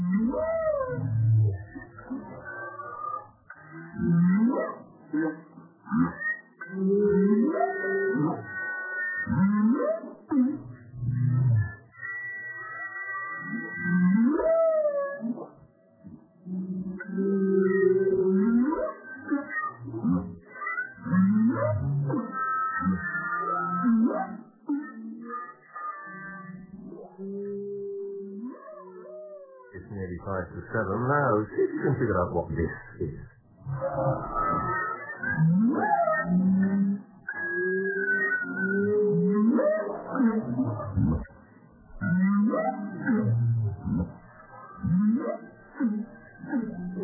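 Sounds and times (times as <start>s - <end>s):
studio-processed whale calls with low moans and squeals: 0.0s - 15.6s, 16.4s - 47.0s.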